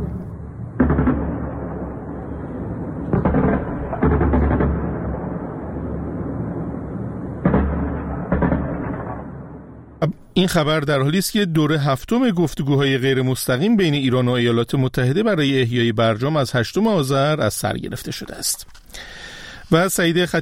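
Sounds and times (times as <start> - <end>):
anti-aircraft gunfire during an air-defence exercise in Bushehr Iran: 0.0 - 9.9
speech: 10.4 - 20.4.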